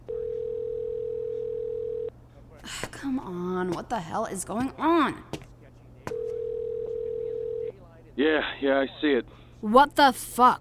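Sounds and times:
telephone ringing tone while calling: 0.1s - 2.1s, 6.1s - 7.7s
speech: 2.7s - 5.4s, 8.2s - 10.5s.

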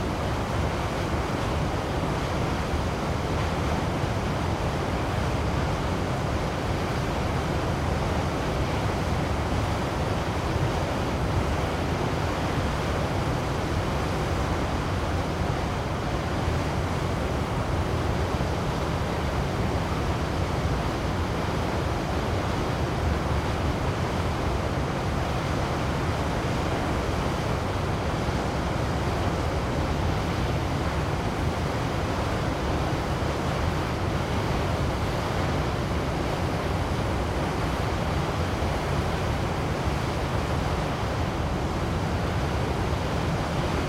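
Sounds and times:
waterfall roaring: 0.0s - 43.8s.

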